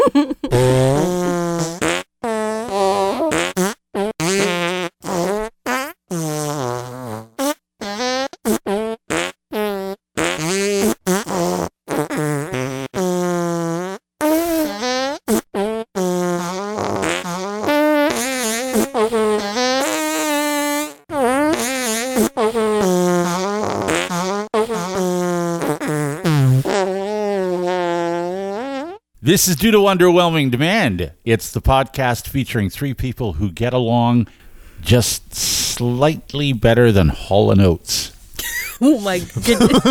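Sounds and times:
laughter: 0.0s - 1.4s, 38.4s - 39.8s
farting sounds: 0.0s - 31.1s, 32.8s - 39.8s
speech: 0.1s - 1.2s, 29.4s - 39.8s.

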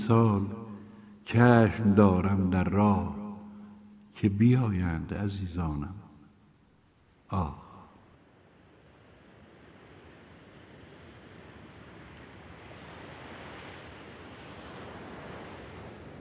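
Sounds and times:
speech: 0.1s - 0.6s, 1.3s - 3.2s, 4.2s - 6.0s, 7.3s - 7.6s
sea surf washing onto the shore: 8.2s - 16.1s.

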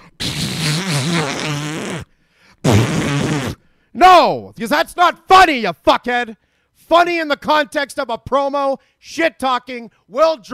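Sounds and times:
fart sound effect: 0.2s - 3.6s
speech: 4.0s - 10.5s.

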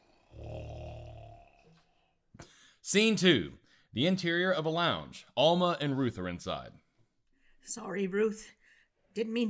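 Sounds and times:
deep rumbling snore: 0.0s - 2.2s
speech: 2.8s - 6.8s, 7.6s - 8.6s, 9.2s - 9.4s.

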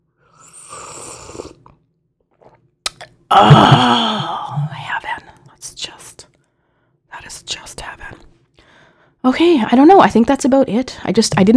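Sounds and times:
slurping hot coffee: 0.2s - 3.1s
speech: 3.4s - 3.9s, 9.3s - 11.5s.

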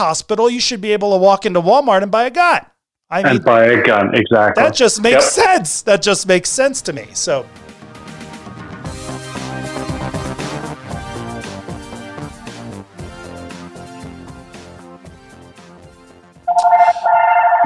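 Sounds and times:
speech: 0.0s - 7.7s
music: 7.2s - 17.6s
mobile phone ringtone: 16.5s - 17.6s.

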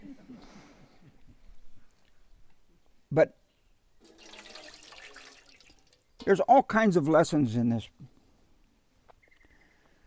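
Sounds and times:
speech: 3.1s - 3.4s, 6.3s - 8.0s
water splashing and trickling while washing feet: 4.0s - 6.2s.

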